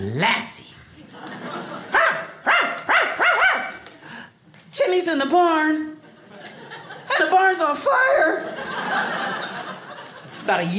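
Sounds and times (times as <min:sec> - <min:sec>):
speech: 0:00.1 - 0:01.3, 0:05.1 - 0:06.0, 0:07.4 - 0:09.5, 0:10.4 - 0:10.7
laughter: 0:01.0 - 0:02.4, 0:06.0 - 0:07.5, 0:08.1 - 0:10.7
voice imitating a talking TV dog barking with yelping barks: 0:01.9 - 0:03.8.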